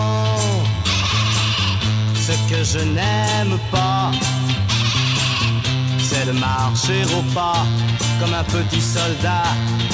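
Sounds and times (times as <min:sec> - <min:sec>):
sheep bleating: 0:00.4 - 0:02.6, 0:04.6 - 0:06.3
speech: 0:02.6 - 0:04.6, 0:06.2 - 0:09.9.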